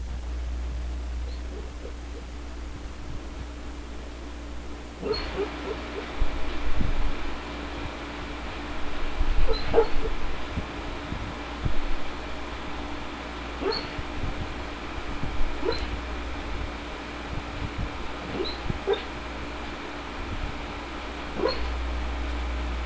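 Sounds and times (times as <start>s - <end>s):
low steady hum: 0.0s - 22.8s
sleeping female dog giving little woofs while dreaming: 1.2s - 2.3s, 5.0s - 6.2s, 9.4s - 10.2s, 13.6s - 14.0s, 15.6s - 16.0s, 18.2s - 19.2s, 21.4s - 21.8s
sleeping female dog whimpering while dreaming: 5.0s - 5.8s, 9.5s - 10.1s, 13.6s - 14.0s, 15.6s - 15.9s, 21.4s - 21.7s.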